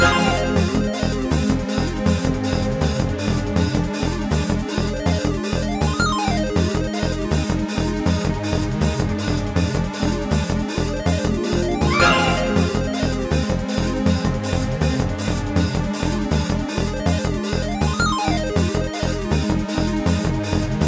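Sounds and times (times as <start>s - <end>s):
space music: 0.0s - 20.6s.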